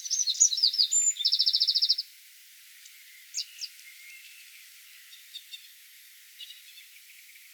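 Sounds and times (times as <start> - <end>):
Eurasian wren Troglodytes troglodytes singing: 0.0 - 2.0.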